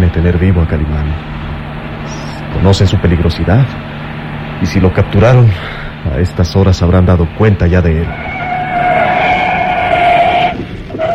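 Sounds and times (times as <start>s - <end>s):
car engine droning with a high whining tone at high speed: 0.0s - 11.1s
speech: 0.1s - 1.4s, 2.5s - 4.0s, 4.6s - 8.3s.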